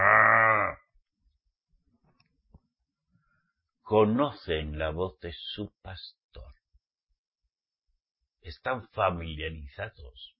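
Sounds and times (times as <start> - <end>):
cow mooing: 0.0 - 0.8
speech: 3.9 - 6.6, 8.4 - 10.3.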